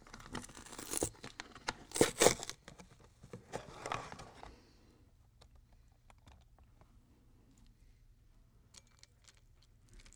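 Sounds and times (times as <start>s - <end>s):
person eating cereal with crunchy bites: 0.6s - 1.1s, 1.9s - 2.5s.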